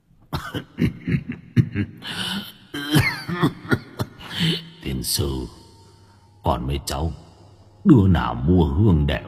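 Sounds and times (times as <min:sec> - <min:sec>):
old man coughing from incense smoke: 0:00.3 - 0:04.6
speech: 0:00.5 - 0:01.0, 0:04.4 - 0:05.6, 0:06.4 - 0:09.2.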